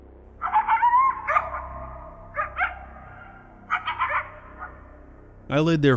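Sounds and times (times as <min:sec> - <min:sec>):
high insistent yelping: 0:00.4 - 0:05.3
speech: 0:05.5 - 0:05.9.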